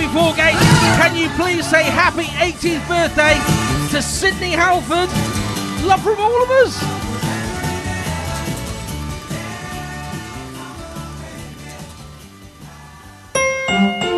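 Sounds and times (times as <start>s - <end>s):
music playing: 0.0s - 14.1s
speech: 0.2s - 7.0s
phone ringing with a bright electronic trill: 13.4s - 14.1s.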